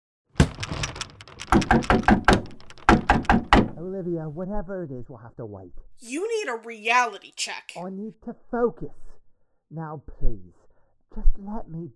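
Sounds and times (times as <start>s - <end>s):
heavy fists pounding on a locked door: 1.5s - 3.8s
speech: 3.8s - 9.1s, 9.7s - 11.9s.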